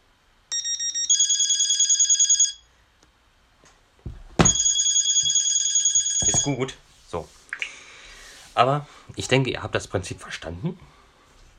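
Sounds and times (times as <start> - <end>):
self-made electronic phone ringtone: 0.5 - 2.7, 4.4 - 6.7
speech: 6.4 - 7.4, 8.6 - 11.0.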